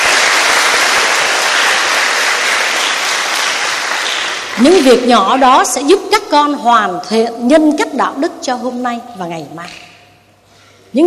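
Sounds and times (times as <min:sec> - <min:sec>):
loud sustained applause from a large audience: 0:00.0 - 0:05.0
speech: 0:04.6 - 0:09.8.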